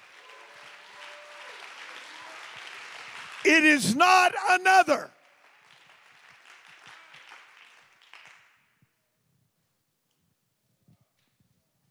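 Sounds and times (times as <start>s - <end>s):
crowd clapping: 0.0s - 8.7s
speech: 3.4s - 5.1s.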